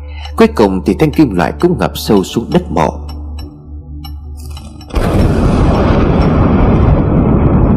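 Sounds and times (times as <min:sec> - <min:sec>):
speech: 0:00.4 - 0:03.1
loud crack of thunder with heavy sustained rumble: 0:04.9 - 0:07.7.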